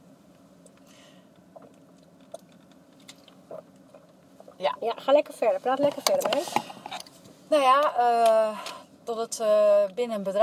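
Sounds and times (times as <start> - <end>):
faint steady hum: 0.0 - 10.4
person sipping a drink: 0.7 - 4.6
swallowing noises: 1.4 - 4.9
speech: 4.6 - 6.8, 7.5 - 10.4.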